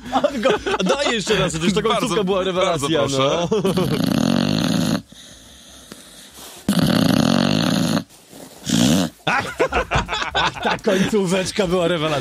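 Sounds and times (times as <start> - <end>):
laughter: 0.0 - 4.0, 9.2 - 12.1
speech: 0.0 - 4.3, 10.8 - 12.1
dog snoring in long rasping breaths: 3.6 - 9.2.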